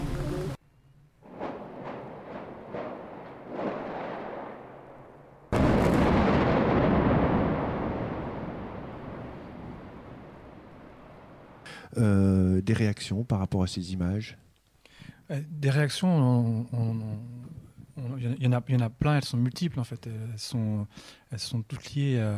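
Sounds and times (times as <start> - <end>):
scheduled explosion with roar of rumbling debris: 1.2 - 11.6
sharp cracks: 1.2 - 11.7
speech: 12.0 - 14.4, 15.3 - 22.3.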